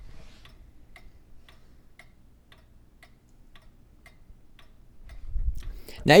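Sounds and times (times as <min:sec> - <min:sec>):
low hum: 0:00.0 - 0:06.1
wall clock ticking: 0:00.4 - 0:05.2.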